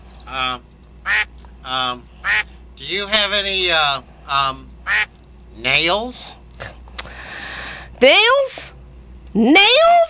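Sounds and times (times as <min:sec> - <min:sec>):
speech: 0:01.7 - 0:02.1, 0:02.8 - 0:06.4, 0:08.0 - 0:10.0
person imitating nasal buzzy duck quacks: 0:02.2 - 0:02.5.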